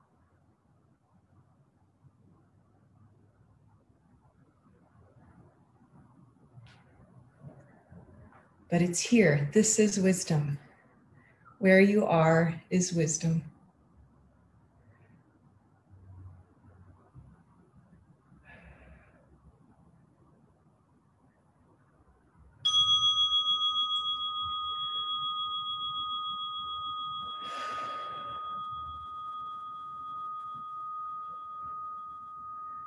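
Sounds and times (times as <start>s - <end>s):
speech: 8.7s - 10.6s, 11.6s - 13.5s
meditation bell ringing to end practice: 22.7s - 32.8s.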